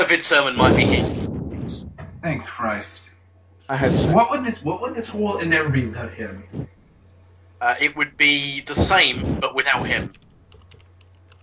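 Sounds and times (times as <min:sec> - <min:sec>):
speech: 0:00.0 - 0:06.8, 0:07.6 - 0:10.2
low electrical hum: 0:00.0 - 0:11.4
computer keyboard clicks from playing a clicking video game: 0:10.1 - 0:11.4.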